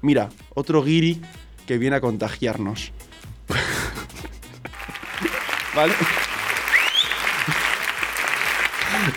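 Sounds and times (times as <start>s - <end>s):
speech: 0.0s - 3.7s, 5.8s - 6.3s
laughter: 3.6s - 9.1s
crowd applauding: 4.6s - 9.1s
whistles and cheers: 4.8s - 8.8s.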